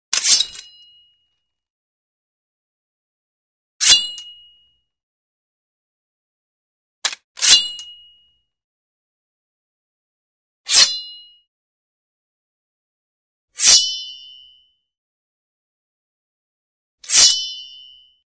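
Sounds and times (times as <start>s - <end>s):
medium sword drawn from sheath: 0.1s - 1.0s, 3.8s - 4.3s, 7.0s - 8.0s, 10.7s - 11.2s, 13.6s - 14.4s, 17.0s - 18.1s.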